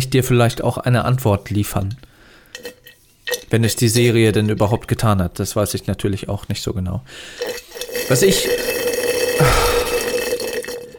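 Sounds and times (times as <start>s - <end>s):
speech: 0.0s - 2.8s, 3.5s - 8.7s
liquid bubbling in a drink: 7.4s - 10.9s.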